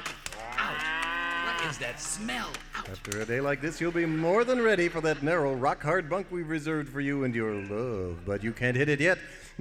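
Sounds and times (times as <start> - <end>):
herd of moving cattle on a roundup mooing: 0.4 - 1.7
speech: 1.7 - 9.6.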